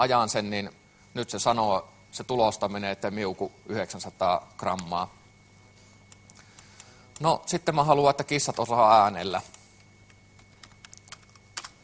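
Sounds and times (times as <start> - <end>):
speech: 0.0 - 5.2, 7.2 - 9.6
soft keystrokes on a computer keyboard typing code: 10.1 - 11.8.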